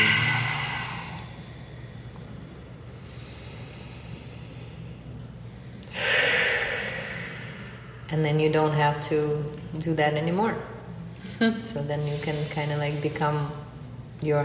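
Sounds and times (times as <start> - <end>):
person breathing deeply: 0.0 - 8.1
speech: 8.1 - 10.8, 11.4 - 13.6, 14.2 - 14.4.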